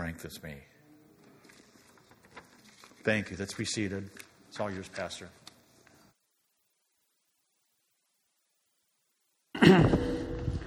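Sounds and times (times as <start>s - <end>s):
speech: 0.1s - 0.8s, 3.0s - 5.4s
person clearing throat during a church service: 9.5s - 10.6s.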